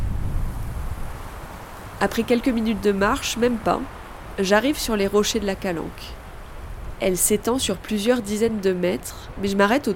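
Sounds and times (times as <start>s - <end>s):
wind buffeting the microphone outdoors on a coastal dirt path: 0.0s - 9.9s
speech: 2.0s - 6.2s, 7.0s - 9.9s.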